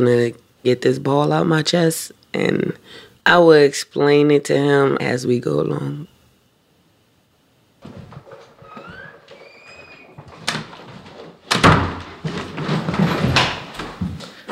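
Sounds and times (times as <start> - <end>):
speech: 0.0 - 6.1
apartment door creaking on hinges: 7.8 - 14.5.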